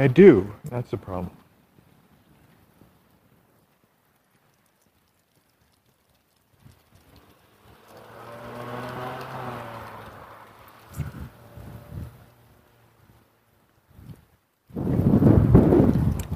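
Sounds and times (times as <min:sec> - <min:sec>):
speech: 0:00.0 - 0:01.4
sharp wind gusts blowing outdoors: 0:09.4 - 0:12.5, 0:13.9 - 0:16.3.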